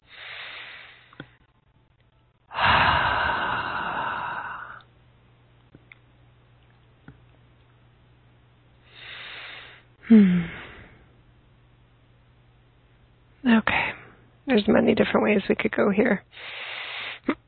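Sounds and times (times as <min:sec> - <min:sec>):
person breathing deeply in and out: 0:00.0 - 0:01.2, 0:02.5 - 0:04.8, 0:08.9 - 0:11.1, 0:16.4 - 0:17.3
speech: 0:10.1 - 0:10.4, 0:14.6 - 0:16.6.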